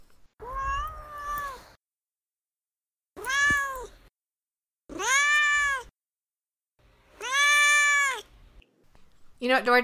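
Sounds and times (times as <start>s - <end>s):
pet cat meowing: 0.4s - 1.7s, 3.2s - 4.0s, 4.9s - 5.9s, 7.2s - 8.3s
speech: 9.4s - 9.8s.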